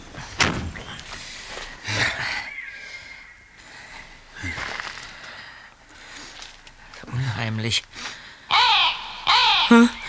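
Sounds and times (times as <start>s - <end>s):
bird calling with harsh raspy caws: 0.0s - 5.4s, 8.0s - 10.0s
speech: 7.5s - 7.9s.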